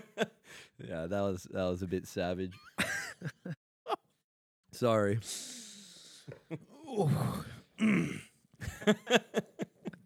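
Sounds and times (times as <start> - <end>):
laughter: 0.0 - 0.4, 2.7 - 4.0, 8.6 - 10.0
speech: 0.2 - 3.6, 4.8 - 5.6, 6.5 - 9.5
person clearing throat: 6.8 - 8.4.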